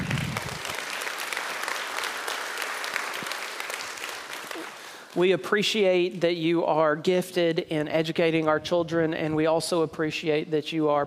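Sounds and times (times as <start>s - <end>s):
audience applause: 0.0s - 5.1s
speech: 5.2s - 11.0s.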